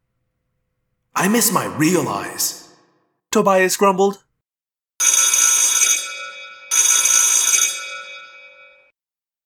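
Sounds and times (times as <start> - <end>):
speech: 1.2 - 2.6, 3.3 - 4.2
loud safety alarm bell ringing: 5.0 - 9.0.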